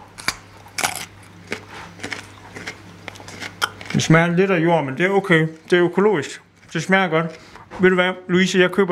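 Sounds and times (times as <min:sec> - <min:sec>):
biting into a small raw organic carrot: 0:00.0 - 0:04.1
loud crunches of chewing raw carrot: 0:00.0 - 0:04.4
faint steady hum: 0:00.0 - 0:08.9
speech: 0:04.0 - 0:08.9.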